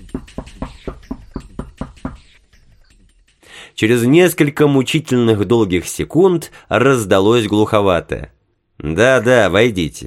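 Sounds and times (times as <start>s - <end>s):
quiet rapid knocking on a riveted metal door: 0.0s - 2.3s
speech: 3.8s - 10.0s.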